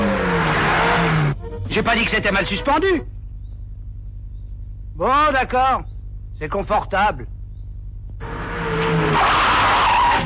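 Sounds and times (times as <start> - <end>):
car tires squealing under hard braking: 0.0 - 2.7, 8.2 - 10.2
car engine rumbling: 0.0 - 9.6
speech: 1.8 - 3.2, 5.0 - 7.3.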